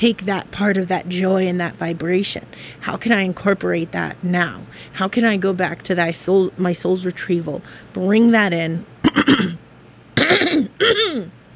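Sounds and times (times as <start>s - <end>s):
speech: 0.0s - 9.6s
person clearing throat: 9.0s - 9.6s, 10.2s - 11.4s.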